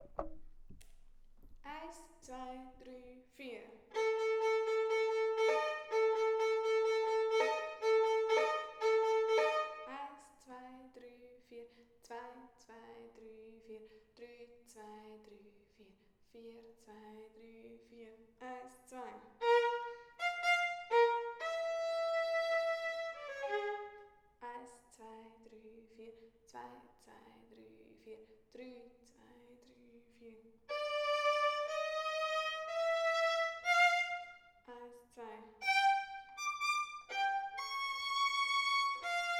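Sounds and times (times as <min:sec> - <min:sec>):
violin in a children's orchestra: 0:03.9 - 0:10.0, 0:19.4 - 0:24.0, 0:30.7 - 0:34.5, 0:35.6 - 0:39.3.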